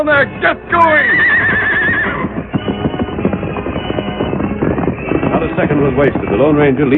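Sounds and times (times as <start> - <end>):
speech: 0.0 - 1.6, 5.4 - 6.9
several horses galloping off: 0.0 - 6.9
horse whinnying: 0.5 - 5.1.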